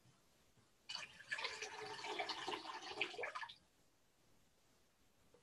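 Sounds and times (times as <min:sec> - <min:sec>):
water poured into a communion bowl: 0:00.9 - 0:03.6.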